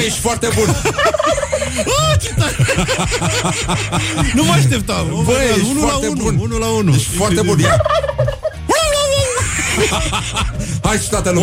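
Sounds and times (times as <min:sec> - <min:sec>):
speech: 0:00.0 - 0:08.3, 0:09.8 - 0:11.4
laughter: 0:00.3 - 0:06.2, 0:07.3 - 0:11.4
person imitating a turkey gobble: 0:07.7 - 0:08.6.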